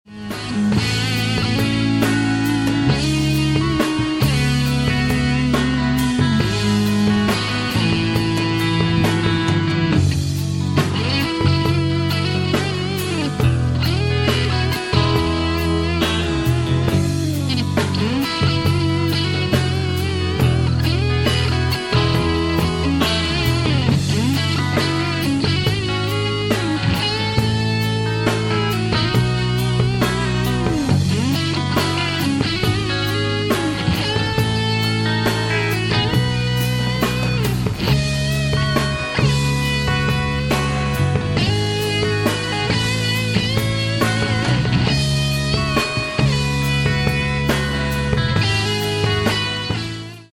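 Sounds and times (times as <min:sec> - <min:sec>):
rock ballad: 0:00.0 - 0:50.3.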